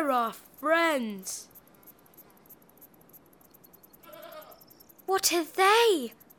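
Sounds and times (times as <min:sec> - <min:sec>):
speech: 0:00.0 - 0:01.5, 0:05.1 - 0:06.2
faint high-pitched ticking: 0:00.0 - 0:06.3
goat bleating: 0:04.0 - 0:04.6.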